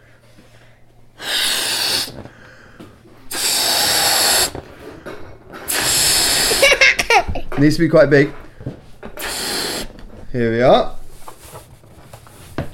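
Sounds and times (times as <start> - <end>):
person inhaling: 0.0 - 6.8, 8.4 - 10.3
person blowing up a rubber balloon by mouth: 1.2 - 2.4, 3.2 - 4.8, 5.5 - 7.0, 9.1 - 10.2
speech: 7.6 - 8.4, 10.3 - 11.0.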